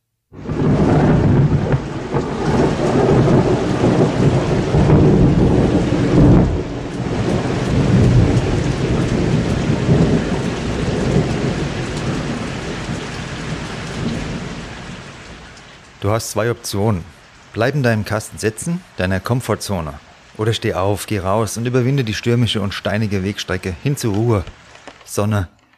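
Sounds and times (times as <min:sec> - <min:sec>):
deep rolling thunder: 0:00.3 - 0:15.6
steady heavy rain in a thunderstorm: 0:00.3 - 0:25.5
speech: 0:16.1 - 0:25.6.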